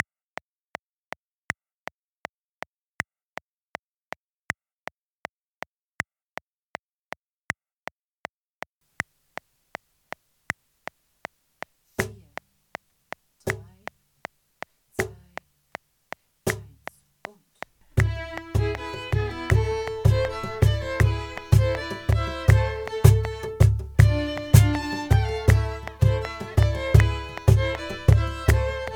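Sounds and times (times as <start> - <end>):
cajon play-along at 160 beats per minute: 13.5 - 13.8, 15.0 - 15.4, 16.5 - 16.8, 17.9 - 28.9.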